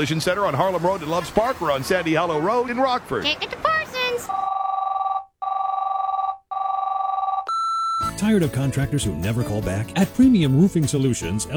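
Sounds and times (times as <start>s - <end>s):
speech: 0.0s - 4.5s, 8.2s - 11.5s
telephone ringing with a trilling electronic tone: 4.2s - 8.1s.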